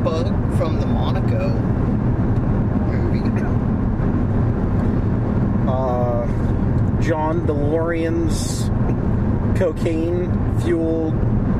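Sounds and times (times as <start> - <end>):
road noise inside a car driving home: 0.0 - 11.5
speech: 0.1 - 1.8, 7.1 - 11.4.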